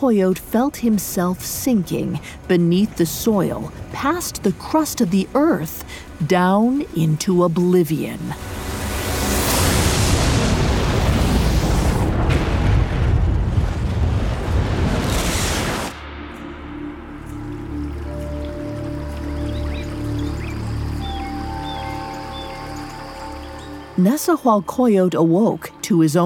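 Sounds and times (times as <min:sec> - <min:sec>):
speech: 0:00.0 - 0:08.6, 0:24.0 - 0:26.2
rushing water at the edge of a great waterfall: 0:00.8 - 0:25.4
fiery explosion of flames after a lightning strike: 0:08.5 - 0:16.8
faint high chirps overhead: 0:18.1 - 0:25.3.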